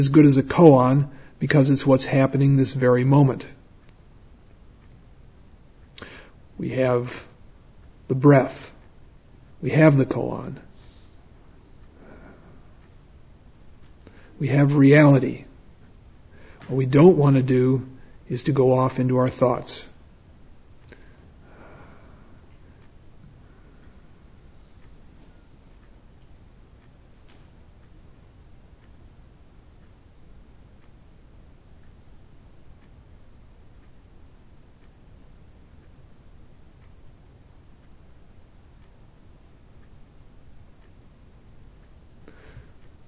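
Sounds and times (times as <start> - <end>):
speech: 0.0 - 3.6, 6.0 - 7.3, 8.1 - 8.7, 9.6 - 10.6, 14.4 - 15.5, 16.7 - 19.9
clock ticking: 0.1 - 43.0
breath or sniff: 10.8 - 11.2.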